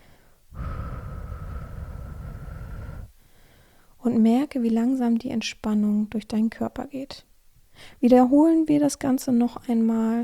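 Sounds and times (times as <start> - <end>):
slow controlled exhale through the mouth in a relaxation breathing exercise: 0.0 - 3.9
speech: 4.0 - 10.2.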